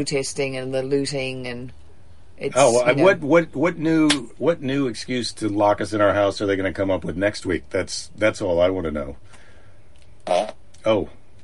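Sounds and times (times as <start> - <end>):
speech: 0.0 - 1.8, 2.4 - 9.4, 10.3 - 11.2
fart noises from a novelty fart machine: 10.2 - 10.7.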